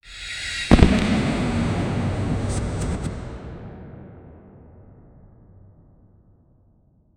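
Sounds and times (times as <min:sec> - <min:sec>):
dragon lightning: 0:00.7 - 0:03.2.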